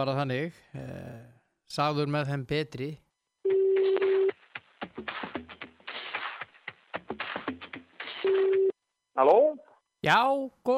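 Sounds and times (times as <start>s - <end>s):
speech: 0.0s - 3.0s, 9.2s - 10.7s
steady telephone tone: 3.4s - 4.4s, 8.2s - 8.8s.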